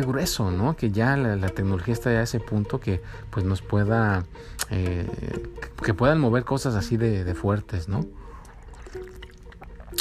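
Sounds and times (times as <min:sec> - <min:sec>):
speech: 0:00.0 - 0:08.2
soft liquid trickling: 0:08.0 - 0:09.9
faint swallowing: 0:08.2 - 0:09.9
person sipping water: 0:08.2 - 0:09.9.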